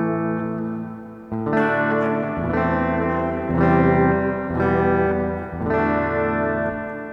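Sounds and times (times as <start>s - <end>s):
plugged-in electric guitar strumming chords through reverb effect: 0.0s - 7.1s.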